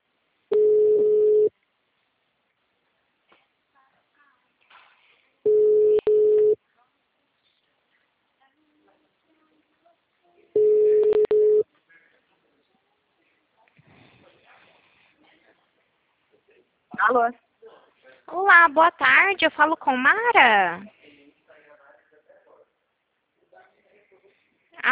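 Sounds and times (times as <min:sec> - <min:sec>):
telephone tones mimicking a wrong-number call: 0:00.5 - 0:01.5, 0:05.5 - 0:06.6, 0:10.6 - 0:11.6
speech: 0:17.1 - 0:17.4, 0:18.3 - 0:21.0.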